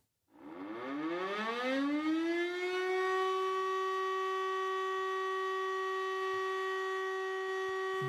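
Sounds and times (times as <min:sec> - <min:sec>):
fire brigade alarm siren wailing: 0:00.4 - 0:08.0.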